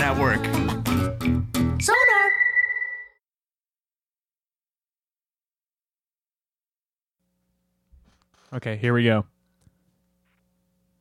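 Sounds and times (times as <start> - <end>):
speech: 0.2 - 2.1, 8.5 - 9.4
telephone ringback tone on a call: 1.9 - 3.2.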